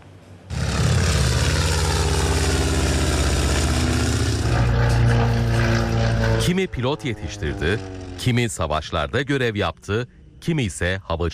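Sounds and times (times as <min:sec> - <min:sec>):
historic propeller aircraft engines droning in formation overhead: 0:00.0 - 0:11.0
speech: 0:06.5 - 0:11.3.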